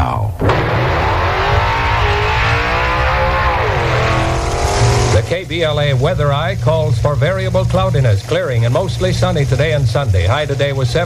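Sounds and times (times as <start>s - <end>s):
car engine revving: 0.4s - 6.2s
speech: 5.3s - 11.0s.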